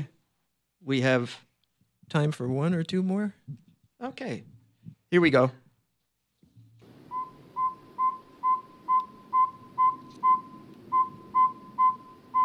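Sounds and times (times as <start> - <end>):
faint hiss: 0.0 - 12.4
speech: 0.8 - 1.5, 2.1 - 5.6
bird call of whistled toots resembling truck backup beeper: 7.1 - 12.4.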